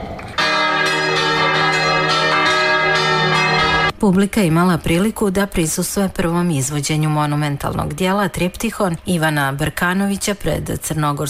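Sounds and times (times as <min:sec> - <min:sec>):
church bells ringing in Kotor: 0:00.4 - 0:04.0
speech: 0:04.0 - 0:11.2.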